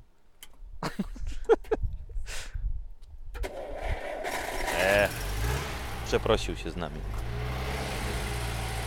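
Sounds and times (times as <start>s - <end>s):
speech: 1.0s - 1.8s, 6.1s - 7.4s
Żuk van engine cranking and failing to catch: 3.4s - 8.7s
voice-like sounds: 4.7s - 5.1s.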